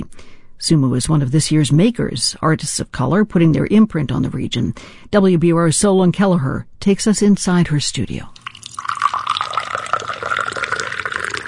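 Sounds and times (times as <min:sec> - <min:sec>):
speech: 0:00.6 - 0:08.4
tea pouring into a cup: 0:08.4 - 0:11.4.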